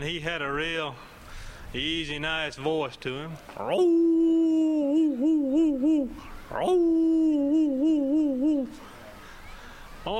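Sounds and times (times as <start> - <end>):
speech: 0.0 - 1.1, 1.7 - 4.2, 5.6 - 8.8
person imitating an old hound dog baying: 3.6 - 8.9.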